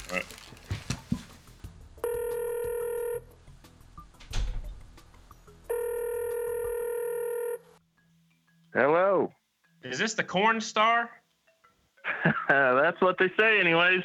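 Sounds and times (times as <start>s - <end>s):
phone handling noise: 0.0s - 1.5s
outgoing phone call electronic ring tone: 2.0s - 3.3s, 5.7s - 7.8s
speech: 10.0s - 11.2s, 12.5s - 14.0s
laughter: 12.0s - 12.8s.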